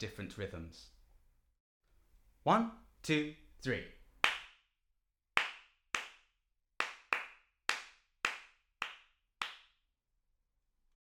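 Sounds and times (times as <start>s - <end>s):
speech: 0.0s - 1.0s, 2.4s - 4.0s
crisp hand claps in an uneven rhythm: 4.2s - 4.7s, 5.4s - 9.8s.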